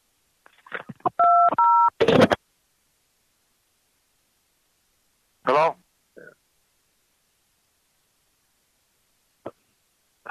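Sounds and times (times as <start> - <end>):
touch-tone beeps as a telephone number is dialed: 1.2 - 1.9.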